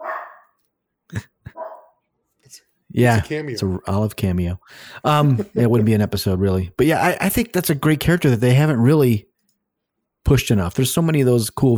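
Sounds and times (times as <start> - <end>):
dog barking: 0.0 - 0.5, 1.5 - 1.9
speech: 1.1 - 1.3, 2.5 - 9.3, 10.3 - 11.7
laughter: 3.0 - 9.2.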